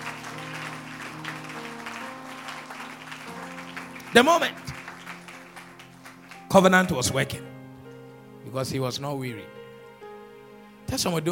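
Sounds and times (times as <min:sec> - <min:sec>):
congregation clapping hands: 0:00.0 - 0:07.4
sustained keyboard or organ chords: 0:00.0 - 0:11.2
speech: 0:04.1 - 0:04.7, 0:06.5 - 0:07.5, 0:08.4 - 0:09.6, 0:10.9 - 0:11.2.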